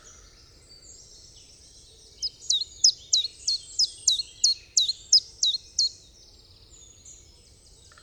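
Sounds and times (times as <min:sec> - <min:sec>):
common chiffchaff song: 0:02.2 - 0:05.9.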